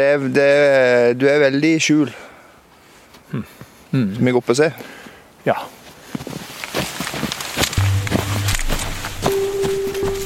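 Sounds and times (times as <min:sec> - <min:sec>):
speech: 0:00.0 - 0:02.3, 0:03.3 - 0:06.4
footsteps crunching along a path through rugged heavily vegetated terrain: 0:05.7 - 0:10.2
low hum: 0:07.8 - 0:10.2.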